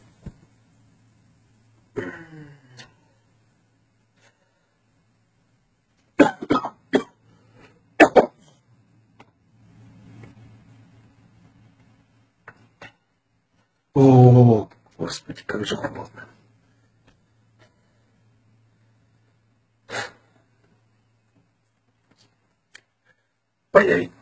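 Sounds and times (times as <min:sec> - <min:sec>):
man coughing in harsh bursts: 0:06.2 - 0:07.2, 0:08.0 - 0:08.4
speech: 0:14.0 - 0:16.4.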